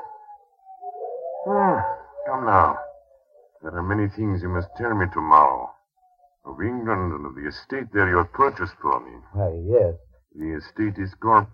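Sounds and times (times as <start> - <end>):
wolves howling: 0.0 - 7.2
speech: 1.4 - 2.8, 3.6 - 5.7, 6.4 - 11.5.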